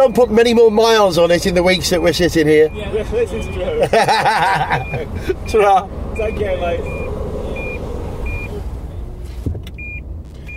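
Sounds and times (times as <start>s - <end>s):
car parking sensor high-pitched electronic beeps: 0.0s - 5.6s, 6.2s - 9.0s, 9.7s - 10.5s
speech: 0.0s - 7.0s
low rumble of the vehicle interior: 0.0s - 10.5s
laughter: 3.5s - 5.5s
clunk: 9.3s - 10.5s.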